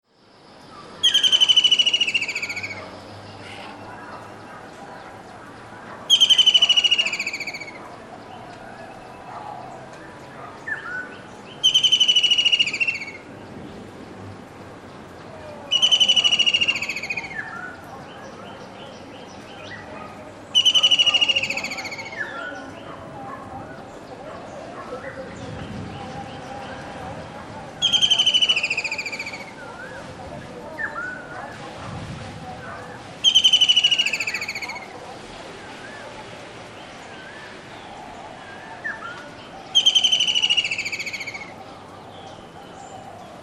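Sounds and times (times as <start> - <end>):
White-throated Kingfisher song: 0.1 - 14.4, 15.0 - 43.4.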